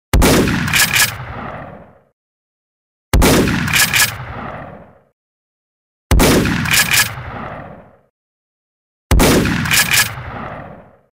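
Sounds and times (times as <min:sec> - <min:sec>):
Winchester 12 shotgun: 0:00.1 - 0:02.0, 0:03.1 - 0:04.9, 0:06.1 - 0:07.9, 0:09.1 - 0:11.1.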